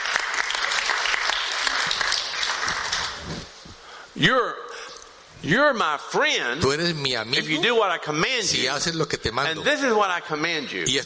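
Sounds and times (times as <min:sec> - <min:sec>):
congregation clapping: 0:00.0 - 0:03.6
speech: 0:04.2 - 0:04.6, 0:05.4 - 0:11.0
single voice speaking loudly: 0:05.4 - 0:11.0.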